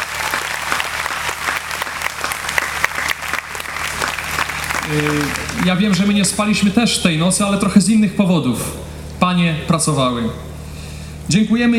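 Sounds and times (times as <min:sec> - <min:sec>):
audience applause: 0:00.0 - 0:06.7
speech: 0:04.9 - 0:10.5, 0:11.3 - 0:11.7.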